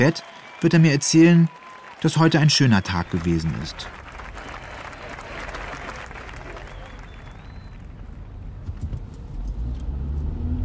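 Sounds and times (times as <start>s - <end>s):
speech: 0.0s - 4.0s
car cruising along a motorway with tyre and wind roar: 7.3s - 10.6s.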